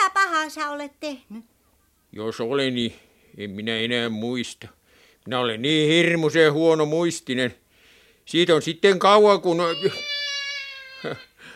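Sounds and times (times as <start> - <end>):
speech: 0.4 - 1.5, 2.1 - 7.6, 8.3 - 10.1, 11.0 - 11.3
cat whining meow: 9.7 - 11.3.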